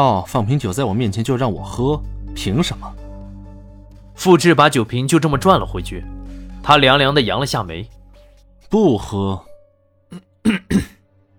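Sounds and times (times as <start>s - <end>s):
speech: 0.0s - 3.0s, 4.2s - 8.0s, 8.7s - 9.5s, 10.1s - 10.9s
throaty cough: 10.1s - 11.0s.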